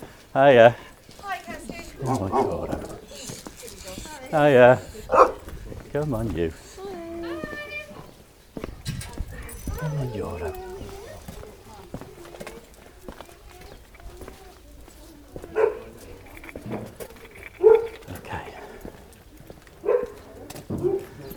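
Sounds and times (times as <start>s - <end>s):
footsteps: 0.0s - 21.3s
scuffling: 0.0s - 21.3s
speech: 0.4s - 0.9s, 2.0s - 3.3s, 4.3s - 6.6s, 9.8s - 10.7s
dog on a walk barking at Labradors: 1.6s - 7.0s, 15.5s - 18.8s, 19.8s - 21.3s.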